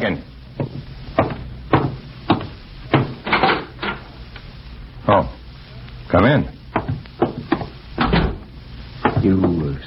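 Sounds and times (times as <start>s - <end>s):
speech: 0.0s - 0.3s, 6.1s - 6.6s
firm knocks on a wooden door: 0.6s - 3.2s, 6.7s - 8.4s, 9.0s - 9.6s.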